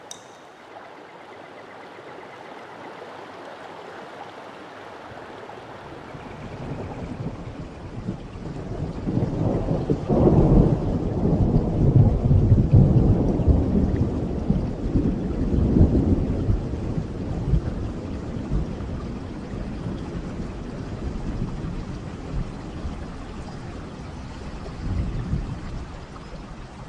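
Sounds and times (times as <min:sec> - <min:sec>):
steady rain pouring down: 0:00.0 - 0:26.8
deep rolling rumbles of thunder: 0:05.8 - 0:26.0.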